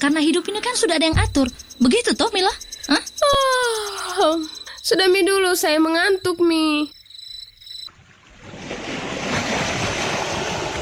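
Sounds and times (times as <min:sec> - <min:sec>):
speech: 0:00.0 - 0:07.0
short tonal chirp: 0:01.1 - 0:05.0
wind: 0:01.1 - 0:10.8
ocean waves breaking on a beach: 0:07.9 - 0:10.8.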